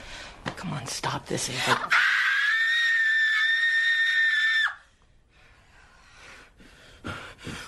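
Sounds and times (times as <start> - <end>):
speech: 0.6 - 2.1
woman screaming: 1.9 - 4.8.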